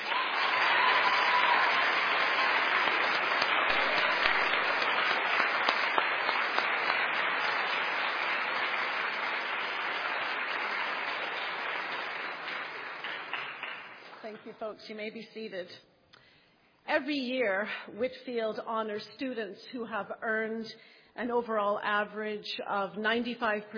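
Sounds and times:
crowd applauding the production crew: 0.0 - 14.5
speech: 14.6 - 15.9, 16.9 - 23.7.

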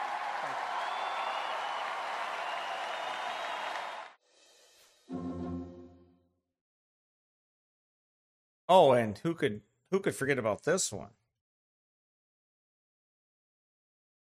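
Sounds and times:
large audience clapping and cheering: 0.0 - 4.2
speech: 8.7 - 11.2.

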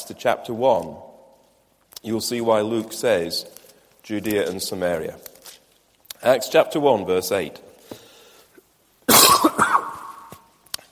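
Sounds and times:
speech: 0.1 - 1.1, 2.0 - 5.3, 6.2 - 7.7
cough into a microphone during a Bible teaching: 9.1 - 10.4.

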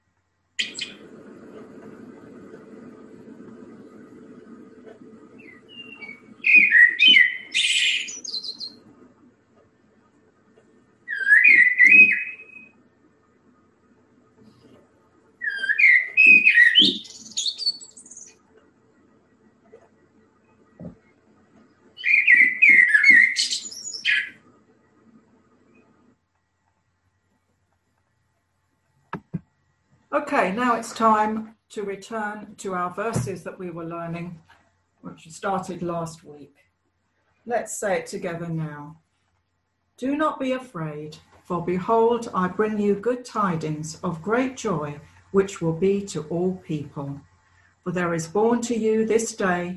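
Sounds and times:
faint low hum: 0.0 - 49.7
blackbird singing: 0.6 - 1.0, 5.4 - 8.8, 11.1 - 12.7, 15.4 - 18.3, 22.0 - 24.4
speech: 30.3 - 34.5, 35.1 - 36.7, 37.5 - 39.0, 40.0 - 49.7.

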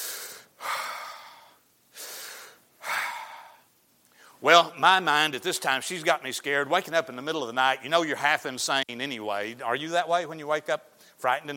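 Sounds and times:
person imitating heavy breathing: 0.0 - 3.8
speech: 4.4 - 11.5.

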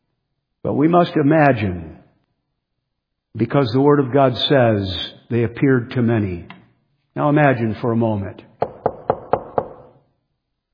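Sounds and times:
speech: 0.6 - 1.9, 3.4 - 6.6, 7.2 - 8.5
firm knocks on a wooden door: 8.6 - 9.9.

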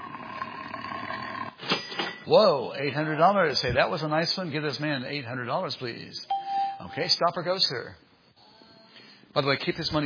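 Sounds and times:
loud growling tiger roar: 0.0 - 1.6
speech: 2.3 - 8.0, 9.3 - 10.0.

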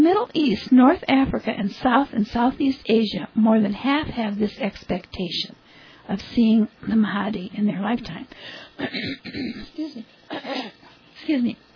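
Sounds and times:
speech: 0.2 - 11.7
person clearing throat: 8.8 - 10.8
person coughing: 8.8 - 10.8.

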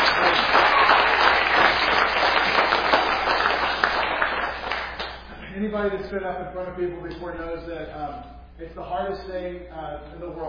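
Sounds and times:
crowd applauding: 0.0 - 5.3
speech: 5.8 - 10.4.

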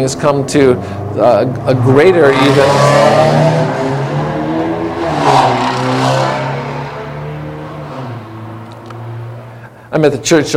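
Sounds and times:
speech: 0.0 - 3.9, 5.3 - 6.4, 9.9 - 10.5
car engine revving hard as the car peels out and accelerates: 0.0 - 9.6.

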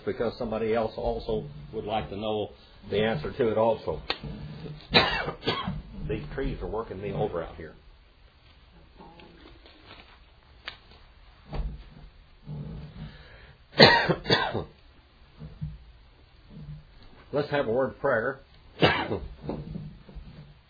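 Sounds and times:
speech: 0.0 - 7.8, 17.3 - 19.7
person coughing harshly: 4.9 - 5.8, 13.8 - 14.8, 18.8 - 19.3
throat clearing: 4.9 - 5.9, 13.8 - 14.8, 18.8 - 19.8.

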